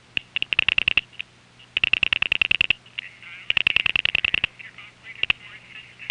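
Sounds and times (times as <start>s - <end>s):
crossbar tandem telephone exchange dial pulsing digits over a call line: 0.2s - 1.1s, 1.8s - 2.8s
faint recorded telephone announcement: 3.0s - 6.0s.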